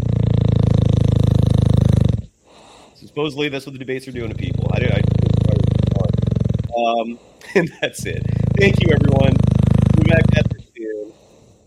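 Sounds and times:
dog snoring: 0.0 - 2.8, 4.1 - 6.8, 8.0 - 10.8
speech: 3.2 - 5.1, 6.9 - 9.4.

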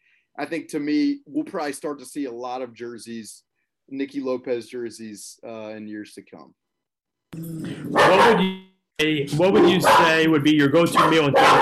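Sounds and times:
speech: 0.4 - 6.6, 7.3 - 11.5
dog barking harshly: 7.9 - 8.5, 9.5 - 10.3, 10.9 - 11.5.

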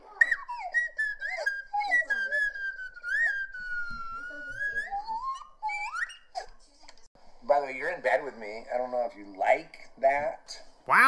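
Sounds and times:
slide whistle playing a birthday tune: 0.2 - 6.4
speech: 7.7 - 11.0.

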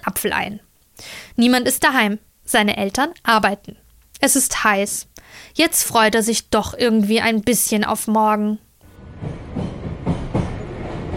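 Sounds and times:
speech: 0.1 - 8.6
U6 subway train rumbling along the tracks: 8.9 - 11.1.

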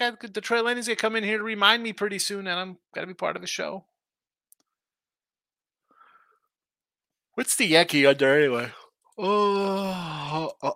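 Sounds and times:
speech: 0.0 - 3.9, 7.4 - 10.7
man yawning: 9.2 - 10.7.

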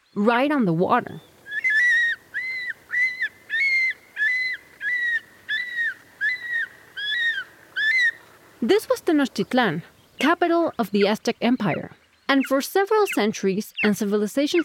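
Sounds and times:
speech: 0.2 - 1.3, 8.7 - 14.6
golden eagle whistled calls: 1.2 - 8.2.

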